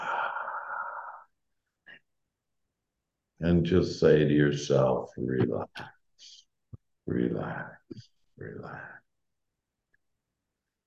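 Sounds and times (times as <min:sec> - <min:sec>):
deep breathy exhale: 0:00.0 - 0:01.3
speech: 0:03.4 - 0:06.4, 0:07.1 - 0:09.0.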